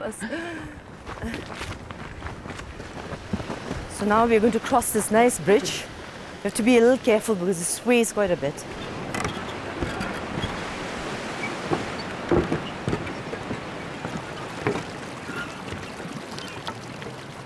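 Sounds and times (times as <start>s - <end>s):
speech: 0.0s - 1.9s, 4.0s - 8.8s
flowing river water: 0.6s - 17.4s
knocks and splashes: 8.6s - 17.4s.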